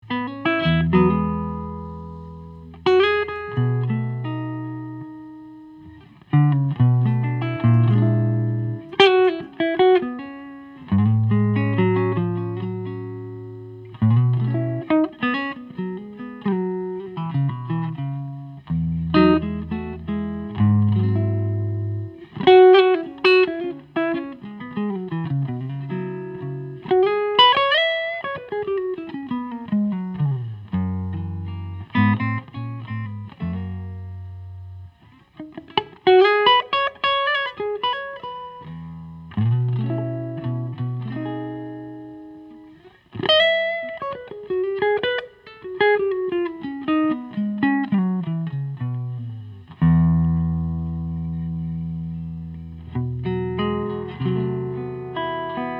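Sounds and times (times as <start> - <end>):
1984 maple spruce electric guitars through Gibson Citation amp: 0.0 - 55.7.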